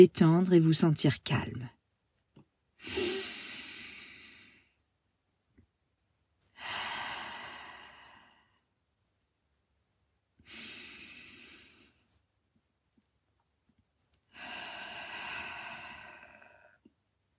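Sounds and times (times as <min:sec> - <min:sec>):
speech: 0:00.0 - 0:01.8, 0:02.8 - 0:03.1
deep breaths in through nose, out mouth: 0:02.8 - 0:04.8, 0:06.4 - 0:08.7, 0:10.4 - 0:12.2, 0:14.3 - 0:16.9.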